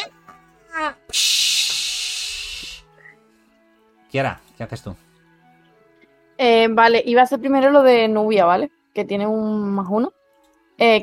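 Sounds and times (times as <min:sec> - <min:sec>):
very hot object thrown through a window hissing in water: 0:01.1 - 0:03.0
speech: 0:04.1 - 0:05.1, 0:06.4 - 0:10.2, 0:10.8 - 0:11.0.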